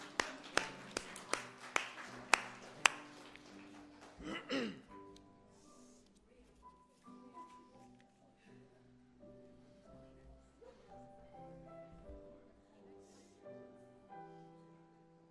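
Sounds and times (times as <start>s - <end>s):
audience clapping in rhythm in a church: 0.0s - 4.6s.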